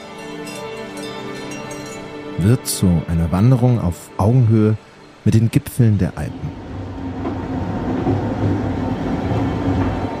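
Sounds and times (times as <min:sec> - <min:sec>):
speech: 0:02.4 - 0:06.6
train rumbling into a mountain tunnel heard from inside a carriage: 0:05.7 - 0:10.1.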